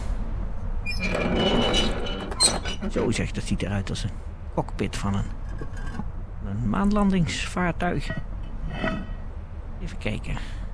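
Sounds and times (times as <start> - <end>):
small doors being swung and shut with metallic clatter: 0.8 - 3.2
speech: 2.8 - 5.8, 6.5 - 9.1, 9.8 - 10.6.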